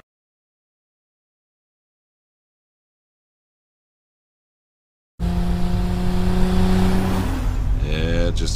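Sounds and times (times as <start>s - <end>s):
car engine revving in a TV commercial: 5.2s - 8.5s.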